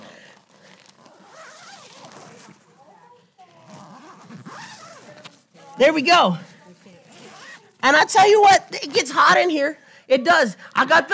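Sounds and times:
zipper on a portable sauna being pulled closed: 0.6s - 2.7s, 3.5s - 5.4s, 7.0s - 7.8s
speech: 5.8s - 6.5s, 7.8s - 11.1s.

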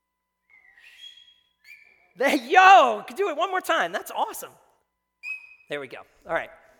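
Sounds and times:
loud shrill whistle wavering in pitch: 0.4s - 2.8s, 5.2s - 5.9s
speech: 2.2s - 4.6s, 5.7s - 6.6s.

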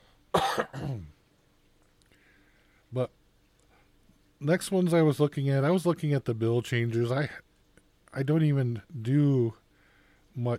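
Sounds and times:
rough cough: 0.3s - 1.2s
speech: 0.6s - 1.1s, 2.9s - 3.2s, 4.4s - 7.4s, 8.2s - 9.6s, 10.4s - 10.5s.

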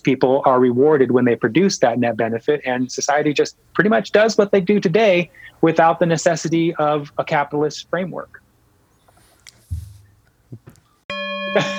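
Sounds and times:
speech: 0.0s - 8.4s, 11.6s - 11.7s
soft scattered noises: 0.0s - 11.0s
bright electronic bell tone: 11.1s - 11.7s.

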